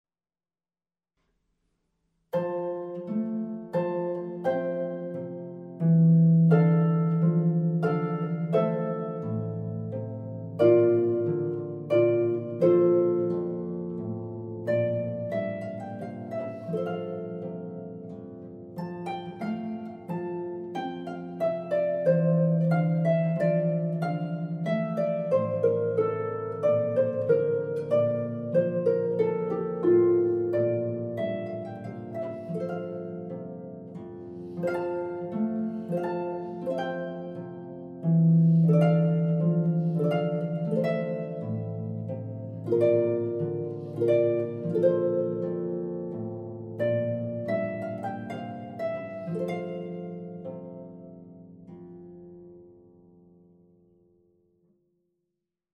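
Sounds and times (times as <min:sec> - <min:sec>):
ground bass piece in F on harp: 0:02.3 - 0:54.3.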